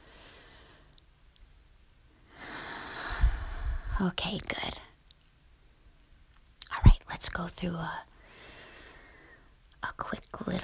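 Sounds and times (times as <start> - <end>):
long exhale during a guided breathing exercise: 2.3 - 4.0, 8.2 - 9.5
speech: 4.0 - 4.9, 7.2 - 8.1, 9.8 - 10.6.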